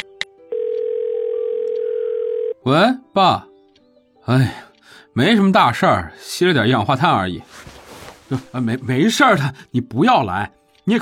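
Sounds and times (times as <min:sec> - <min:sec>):
telephone dial tone while calling someone back: 0:00.5 - 0:02.6
speech: 0:02.7 - 0:03.5, 0:04.3 - 0:04.6, 0:05.2 - 0:07.7, 0:08.3 - 0:11.0.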